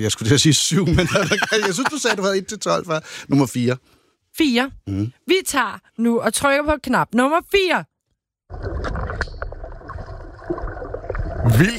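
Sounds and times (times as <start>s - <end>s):
speech: 0.0s - 7.9s, 8.5s - 9.0s, 11.4s - 11.7s
laughter: 0.8s - 2.4s
splashing, gurgling water: 8.5s - 11.7s.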